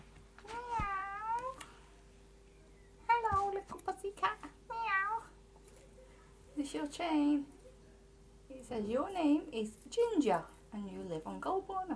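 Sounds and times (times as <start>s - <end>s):
faint steady hum: 0.0s - 11.9s
person meowing like a cat: 0.5s - 1.6s
speech: 6.7s - 7.6s, 8.7s - 11.9s.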